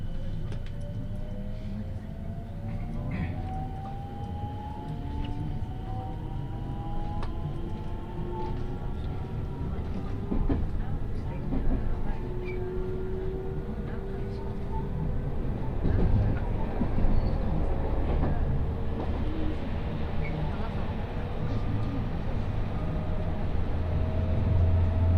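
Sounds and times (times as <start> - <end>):
rapid train rumbling on a main line: 0.0 - 25.1
clacks and thumps from the track: 7.1 - 12.4, 15.3 - 19.3.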